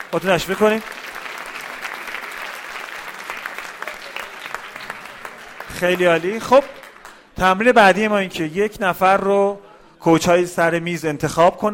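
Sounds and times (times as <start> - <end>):
audience applauding in a room: 0.0 - 7.4
speech: 0.1 - 1.0, 5.8 - 6.8, 7.4 - 11.7.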